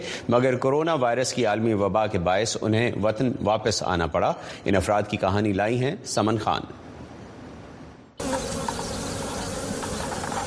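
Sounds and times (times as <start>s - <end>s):
speech: 0.2s - 6.9s
many honeybees swarming around hives: 8.2s - 10.4s.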